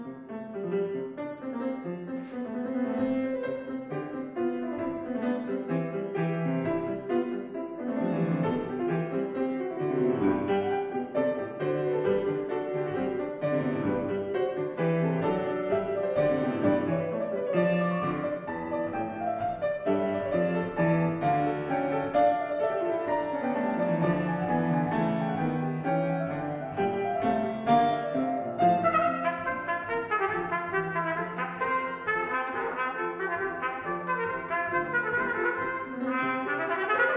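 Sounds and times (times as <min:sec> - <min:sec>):
trumpet concerto: 0:00.7 - 0:37.1.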